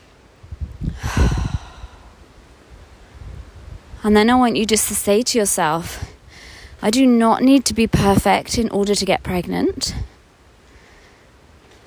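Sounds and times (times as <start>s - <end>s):
deep breath in: 0.9s - 2.2s
speech: 4.0s - 6.1s, 6.8s - 10.1s.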